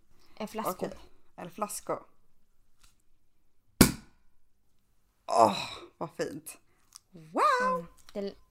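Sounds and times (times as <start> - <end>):
speech: 0.4 - 2.1, 5.3 - 8.4
small sparkling wine bottle popping open: 3.8 - 4.1.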